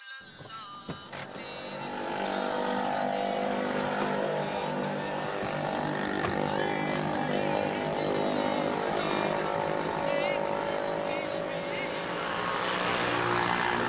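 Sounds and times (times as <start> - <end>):
overheated car engine droning: 0.3 - 13.8.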